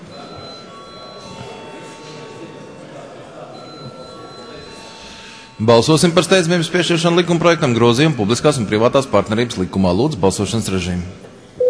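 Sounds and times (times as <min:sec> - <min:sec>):
parliament chamber bell ringing before a vote: 0:00.0 - 0:09.0
murmur of voices: 0:00.0 - 0:11.6
speech: 0:05.6 - 0:11.3.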